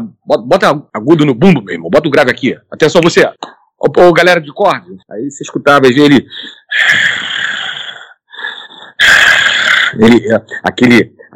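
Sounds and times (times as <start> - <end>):
speech: 0.3 - 7.5, 10.0 - 11.3
voice imitating a heavy man's ragged panting breathing: 6.3 - 10.6.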